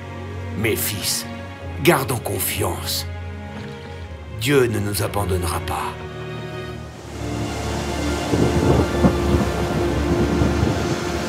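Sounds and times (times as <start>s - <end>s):
speech: 0.6s - 3.1s, 4.4s - 6.1s
deep low rumble: 6.9s - 11.2s
heavy rain pouring down: 6.9s - 11.2s.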